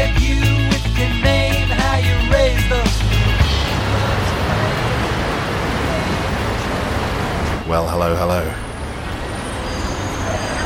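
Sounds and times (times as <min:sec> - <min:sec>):
road traffic on a riverside embankment: 0:00.8 - 0:10.6
low drone: 0:02.7 - 0:10.6.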